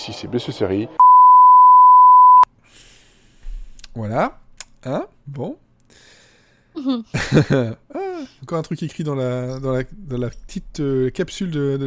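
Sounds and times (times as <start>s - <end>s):
speech: 0.0s - 1.1s, 4.0s - 6.2s, 6.8s - 11.8s
answering machine beep: 1.0s - 2.5s
laughter: 7.2s - 8.1s.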